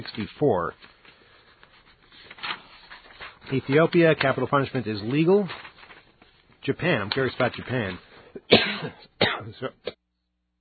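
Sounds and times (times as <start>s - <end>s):
speech: 0.0s - 0.9s, 3.5s - 5.6s, 6.6s - 10.0s
heavy hacking coughing: 8.3s - 10.0s
throat clearing: 8.4s - 10.0s.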